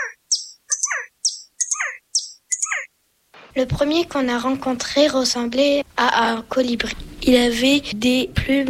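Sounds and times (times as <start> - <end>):
birds chirping and singing: 0.0 - 2.9
speech: 3.6 - 8.6.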